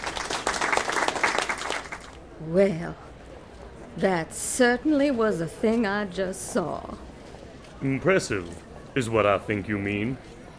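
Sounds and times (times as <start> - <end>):
audience applause: 0.0 - 2.2
speech: 2.4 - 3.0, 4.0 - 7.1, 7.8 - 10.4.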